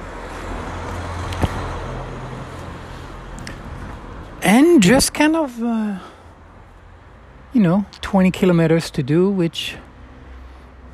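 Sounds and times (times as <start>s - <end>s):
combustion-engine car passing by with low rumbling drone: 0.0s - 5.1s, 9.7s - 10.9s
broad road noise: 0.0s - 10.9s
speech: 4.4s - 6.1s, 7.5s - 9.8s.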